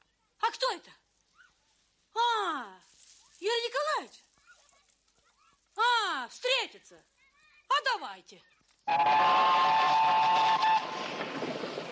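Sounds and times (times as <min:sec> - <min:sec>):
speech: 0:00.7 - 0:01.0, 0:03.4 - 0:04.2, 0:05.8 - 0:07.1, 0:07.8 - 0:10.6
steam locomotive on a narrow-gauge railway in a park sounding its whistle: 0:08.9 - 0:11.2.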